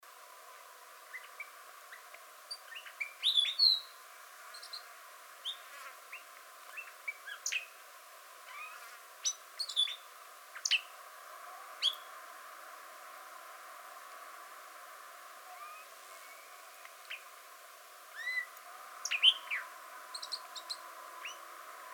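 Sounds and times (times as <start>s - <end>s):
Arabian grosbeak calling: 1.1s - 4.8s, 5.4s - 7.7s, 8.5s - 10.9s, 11.8s - 12.1s, 18.1s - 21.4s.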